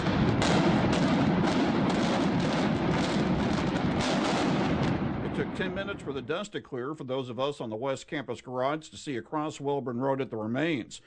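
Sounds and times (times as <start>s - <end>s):
dynamite demolition explosions: 0.0s - 6.5s
speech: 5.5s - 11.0s.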